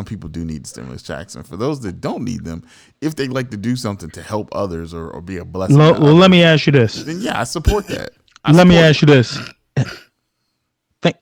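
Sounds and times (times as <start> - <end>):
speech: 0.0 - 10.0
person clearing throat with a gravelly rasp: 7.0 - 8.1, 9.3 - 10.2.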